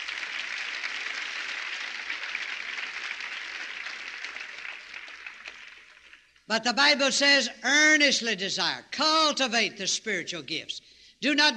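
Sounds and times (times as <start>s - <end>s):
audience applauding: 0.0s - 6.4s
speech: 6.5s - 11.5s.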